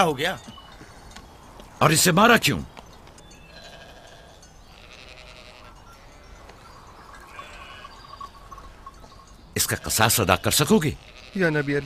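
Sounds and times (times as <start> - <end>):
speech: 0.0 - 0.5, 1.8 - 2.7, 9.6 - 11.8
small flock of sheep bleating: 3.5 - 6.6, 7.2 - 8.1, 9.6 - 11.8.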